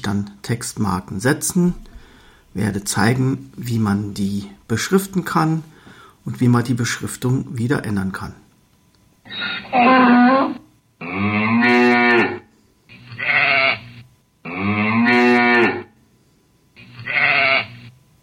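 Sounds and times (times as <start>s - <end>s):
speech: 0.0s - 1.9s, 2.5s - 8.4s, 9.3s - 10.6s
farm animal calls from an animal-sounds file: 9.3s - 12.4s, 13.1s - 13.8s, 14.5s - 15.9s, 16.8s - 17.8s
donkey bray: 9.3s - 12.5s, 13.2s - 13.8s, 14.5s - 15.9s, 17.0s - 17.8s.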